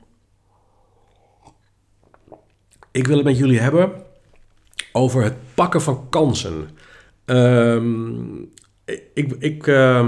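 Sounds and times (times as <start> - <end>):
person sipping water: 0.5 - 2.9
wet mouth clicks: 1.0 - 2.9, 4.3 - 5.0
person swallowing: 1.1 - 2.9
speech: 3.0 - 4.0, 5.0 - 10.0.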